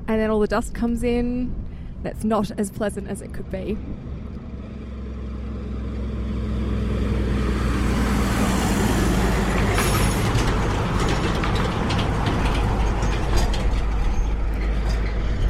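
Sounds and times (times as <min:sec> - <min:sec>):
speech: 0:00.1 - 0:04.1
heavy multi-trailer road train truck engine drone passing on a gravel shoulder: 0:01.1 - 0:15.4.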